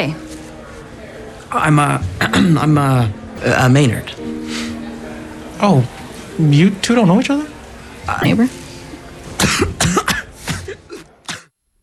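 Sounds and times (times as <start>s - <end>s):
speech: 0.0s - 0.2s, 1.5s - 4.4s, 5.6s - 7.5s, 8.1s - 8.6s, 9.5s - 9.8s
harsh rasping coughs: 9.4s - 11.5s.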